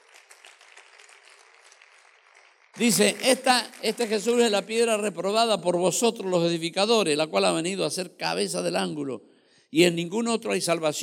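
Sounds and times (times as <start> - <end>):
congregation applauding during an evening religious service: 0.0 - 5.1
speech: 2.8 - 11.0.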